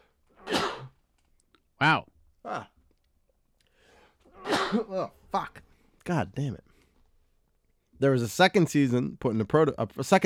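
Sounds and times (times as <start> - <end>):
single sharp sneeze: 0.4 - 1.0, 4.3 - 5.0
speech: 1.8 - 2.7, 4.7 - 6.7, 8.0 - 10.2.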